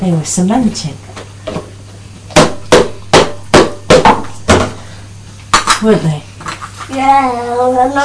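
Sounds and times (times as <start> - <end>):
speech: 0.0 - 1.2, 5.8 - 6.3, 6.9 - 8.0
low hum: 0.0 - 8.0
heavy hammer blows demolishing an old wall: 2.3 - 4.8.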